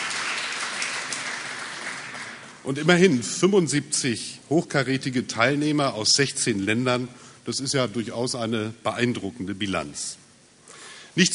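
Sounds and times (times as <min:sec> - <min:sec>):
audience applause at a conference ceremony: 0:00.0 - 0:02.5
speech: 0:02.6 - 0:10.2, 0:11.2 - 0:11.3.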